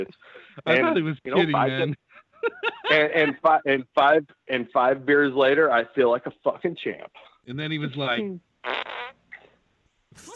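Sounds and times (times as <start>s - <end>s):
speech: 0.0s - 8.9s, 10.1s - 10.3s
laughter: 0.6s - 3.7s
voice blowing a fart imitation: 8.6s - 10.3s.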